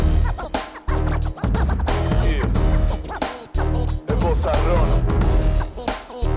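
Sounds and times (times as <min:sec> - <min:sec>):
loud hip-hop beat: 0:00.0 - 0:06.3
turntable scratching: 0:00.0 - 0:06.3
heavy booming bass: 0:01.4 - 0:05.6.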